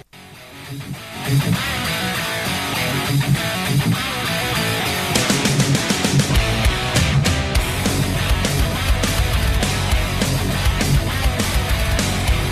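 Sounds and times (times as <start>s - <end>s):
dense distorted heavy metal guitars: 0.0s - 12.5s
pounding heavy metal drums: 5.2s - 12.5s.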